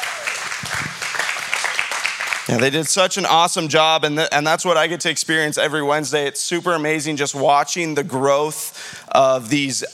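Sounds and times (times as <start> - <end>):
faint voices or cheers in a crowd: 0.0 - 1.0
audience applause: 0.0 - 2.8
speech: 2.5 - 9.9.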